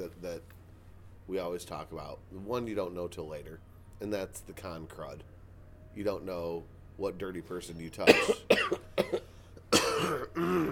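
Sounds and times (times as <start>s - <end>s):
speech: 0.1s - 0.6s, 1.3s - 5.4s, 6.0s - 9.2s
person coughing: 8.0s - 10.7s.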